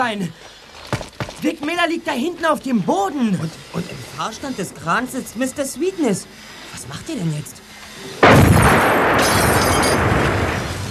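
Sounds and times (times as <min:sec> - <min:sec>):
speech: 0:00.0 - 0:00.6, 0:01.4 - 0:09.6
bomb exploding on a Mustang car: 0:08.2 - 0:10.8.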